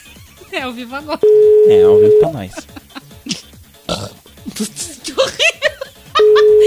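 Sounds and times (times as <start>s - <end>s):
several people laughing: 0.0s - 1.2s, 2.0s - 3.5s, 4.4s - 6.6s
speech: 0.5s - 2.7s
steady electronic beep: 1.2s - 2.3s
loud rough burp: 3.8s - 4.2s.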